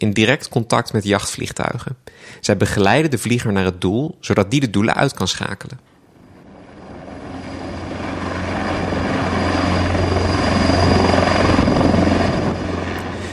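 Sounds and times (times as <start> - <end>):
speech: 0.0 - 5.9
helicopter flying with rotor thrum and engine whine: 6.0 - 13.3.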